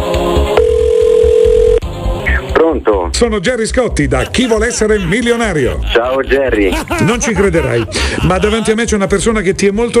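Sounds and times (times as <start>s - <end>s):
rhythmic music of a television quiz show: 0.0s - 0.7s, 1.3s - 9.9s
telephone ringing tone: 0.6s - 1.8s
speech: 3.2s - 9.9s
laughter: 4.0s - 9.3s.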